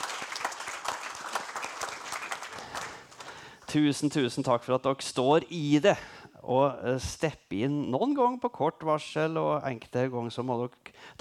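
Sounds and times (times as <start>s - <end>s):
crowd applauding: 0.0s - 3.7s
speech: 3.7s - 11.1s.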